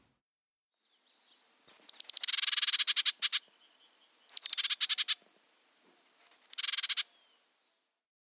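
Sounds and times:
bridled titmouse quick buzzy chattering: 0:01.7 - 0:03.4, 0:04.3 - 0:05.2, 0:06.2 - 0:07.1.

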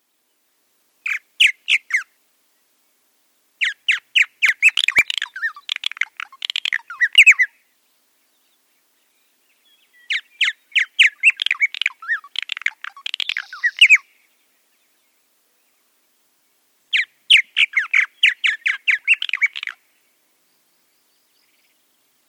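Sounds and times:
purple martin calling: 0:03.6 - 0:15.8, 0:16.9 - 0:22.2.

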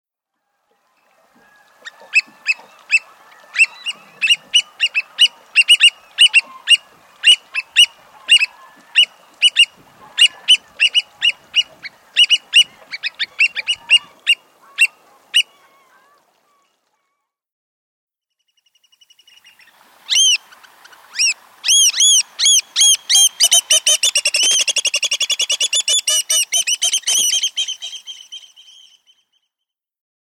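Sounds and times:
Black Oystercatcher calling: 0:01.9 - 0:15.9, 0:19.4 - 0:20.5, 0:21.1 - 0:28.9.

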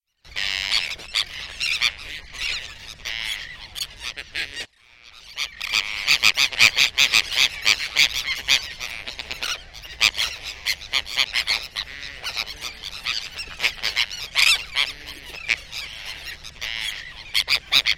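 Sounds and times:
Sandwich tern calls: 0:00.3 - 0:17.9.

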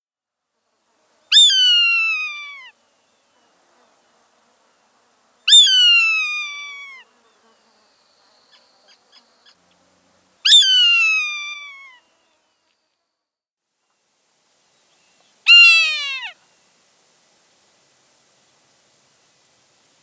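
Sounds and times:
Swainson's hawk calling: 0:01.3 - 0:02.7, 0:05.5 - 0:07.0, 0:10.5 - 0:12.0, 0:15.5 - 0:16.4.

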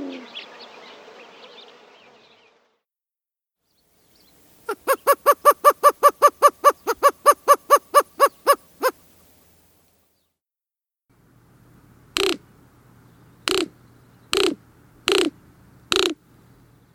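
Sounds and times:
greater roadrunner calling: 0:04.7 - 0:09.0, 0:12.2 - 0:12.6, 0:13.4 - 0:16.2.

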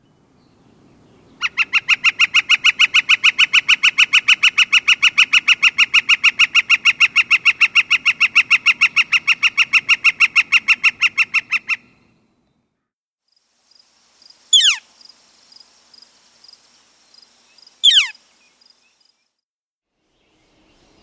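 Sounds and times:
northern flicker sharp high down-slurred calls: 0:01.2 - 0:12.1, 0:14.5 - 0:14.9, 0:17.2 - 0:19.2
northern flicker rapid ringing note series: 0:17.8 - 0:18.1.

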